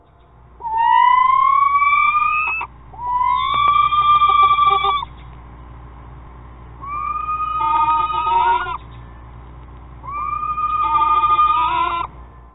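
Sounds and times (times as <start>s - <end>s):
faint hum: 0.0s - 12.5s
screech owl screeching: 0.6s - 5.2s, 6.8s - 9.0s, 10.0s - 12.2s.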